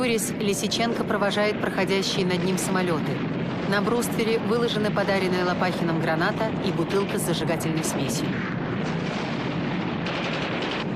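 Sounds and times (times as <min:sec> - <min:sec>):
speech: 0:00.0 - 0:09.0
submachine gun and anti-tank rifle fire at aircraft: 0:02.4 - 0:10.9.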